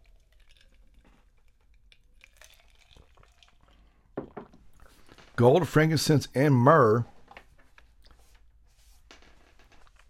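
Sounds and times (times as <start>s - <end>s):
person sipping water: 0.0s - 5.0s
speech: 5.4s - 7.1s.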